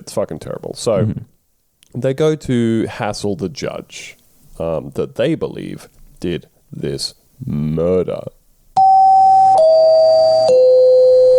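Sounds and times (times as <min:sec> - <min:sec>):
speech: 0:00.1 - 0:01.3, 0:01.9 - 0:08.4
doorbell chime in three descending tones: 0:08.8 - 0:11.3.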